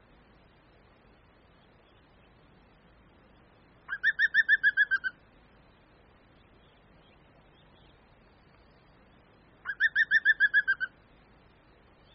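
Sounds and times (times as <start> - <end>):
green woodpecker: 3.9 - 5.2, 9.6 - 10.9.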